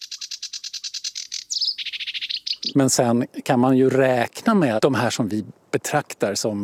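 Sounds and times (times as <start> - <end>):
sedge warbler singing in the reeds: 0.0 - 3.3
speech: 2.8 - 6.6.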